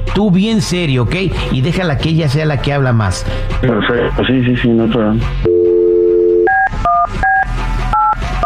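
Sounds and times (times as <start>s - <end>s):
speech: 0.1s - 5.5s
steady telephone dial tone: 5.5s - 7.4s, 8.0s - 8.4s
loud clipped telephone keypad beeps: 6.3s - 8.4s.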